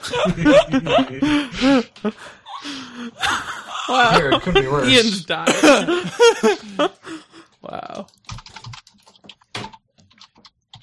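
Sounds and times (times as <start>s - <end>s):
laughter: 0.0s - 7.5s
speech: 0.1s - 8.1s
rapid typing on a computer keyboard: 8.0s - 10.8s.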